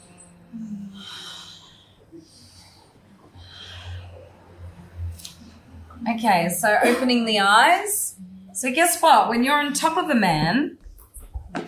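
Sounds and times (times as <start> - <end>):
slow deep breathing during guided breathing exercise: 0.0 - 5.7
speech: 6.0 - 8.0, 8.6 - 10.8.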